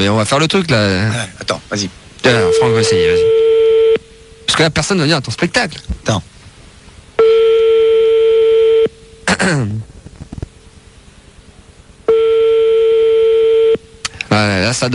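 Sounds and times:
speech: 0:00.0 - 0:03.4, 0:04.6 - 0:06.3, 0:09.4 - 0:09.9, 0:14.4 - 0:14.9
telephone ringback tone on an outgoing call: 0:02.3 - 0:04.0, 0:07.2 - 0:08.9, 0:12.1 - 0:13.8.

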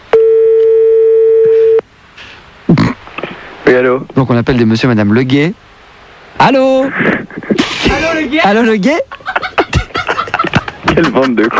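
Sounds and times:
ringback tone on an outgoing telephone call: 0:00.1 - 0:01.8
speech: 0:03.7 - 0:05.7, 0:06.4 - 0:09.2, 0:11.0 - 0:11.5
laughter: 0:09.0 - 0:11.5.

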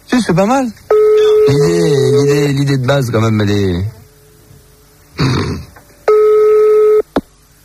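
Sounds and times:
speech: 0:00.3 - 0:00.8, 0:01.5 - 0:04.0
telephone line tone while calling a private number: 0:00.9 - 0:02.8, 0:03.8 - 0:07.1.

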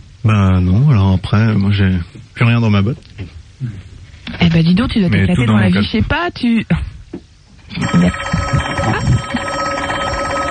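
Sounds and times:
speech: 0:00.2 - 0:09.4
telephone ringing with electronic warbling tone: 0:07.7 - 0:10.4.

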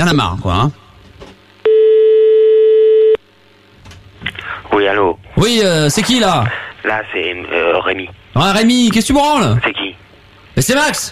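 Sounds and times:
speech: 0:00.0 - 0:00.8, 0:04.8 - 0:09.9, 0:10.6 - 0:11.1
telephone ringing signal while a call is placed: 0:01.6 - 0:03.2.

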